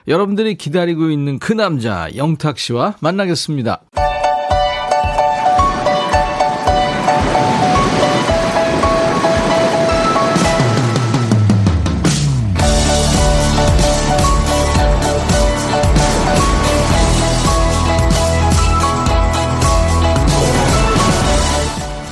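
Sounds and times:
speech: 0:00.0 - 0:04.1
upbeat song with bouncy keyboard chords and a steady beat: 0:03.9 - 0:22.1
ocean surf: 0:04.6 - 0:11.7, 0:12.7 - 0:22.1.

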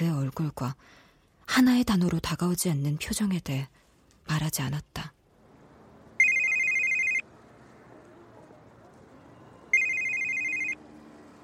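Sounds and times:
speech: 0:00.3 - 0:05.2
mobile phone ringing: 0:06.2 - 0:07.3, 0:09.5 - 0:10.8.

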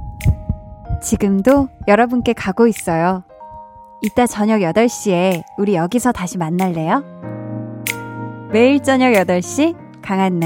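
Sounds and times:
heartbeat sound effect double thump: 0:00.0 - 0:03.8
speech: 0:01.0 - 0:03.3, 0:04.0 - 0:07.2, 0:08.5 - 0:10.4.

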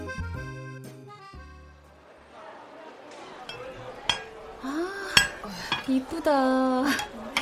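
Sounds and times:
ceramic dishes scraping: 0:03.5 - 0:07.4
ceramic plates and dishes clinking and rattling as they are handled: 0:03.5 - 0:07.4.

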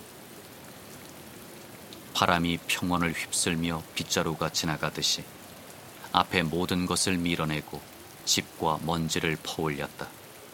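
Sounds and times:
heavy rain pouring down: 0:00.0 - 0:10.5
speech: 0:02.2 - 0:05.4, 0:06.1 - 0:10.2.

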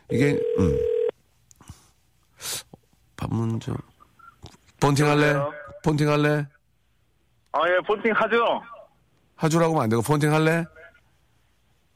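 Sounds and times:
speech: 0:00.1 - 0:00.9, 0:03.6 - 0:03.9, 0:04.9 - 0:06.6, 0:07.6 - 0:08.8, 0:09.4 - 0:10.8
loud electronic phone tone as a call is placed: 0:00.1 - 0:01.1.

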